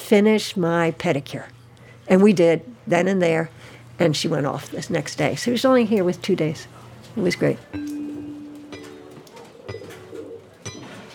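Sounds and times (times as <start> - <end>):
speech: 0.1 - 8.0
pigeon cooing in low throaty tones: 8.8 - 11.1.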